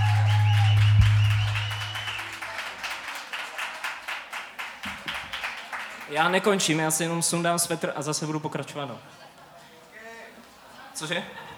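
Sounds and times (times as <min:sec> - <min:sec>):
low hum: 0:00.0 - 0:02.0
small audience clapping: 0:00.0 - 0:06.8
speech: 0:06.1 - 0:09.2, 0:11.0 - 0:11.4.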